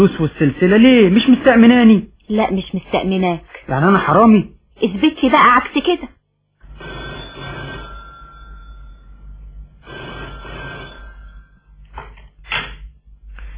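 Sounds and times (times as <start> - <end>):
speech: 0.0 - 6.2
old-style telephone bell ringing: 6.6 - 11.8.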